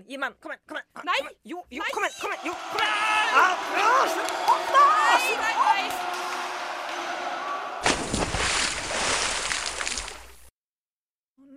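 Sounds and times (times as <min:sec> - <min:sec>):
speech: 0:00.0 - 0:06.1
spilled drink splashing: 0:07.8 - 0:10.5.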